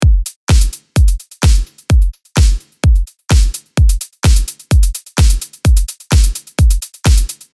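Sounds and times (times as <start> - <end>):
hi-hat with delay: 0.0 - 7.5
kick drum: 0.0 - 7.5
hand clap: 0.5 - 0.8, 1.4 - 1.7, 2.4 - 4.5, 5.2 - 6.4, 7.0 - 7.5.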